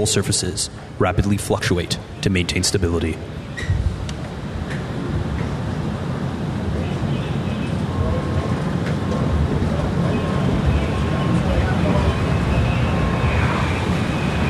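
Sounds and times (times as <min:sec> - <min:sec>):
speech: 0:00.0 - 0:03.8
F-35 fighter jet engine roaring at low speed: 0:00.0 - 0:14.4.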